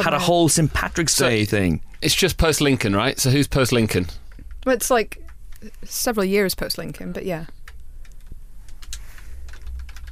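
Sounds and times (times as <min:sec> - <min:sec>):
speech: 0:00.0 - 0:07.6
typing on a computer keyboard during an online search: 0:07.6 - 0:10.1.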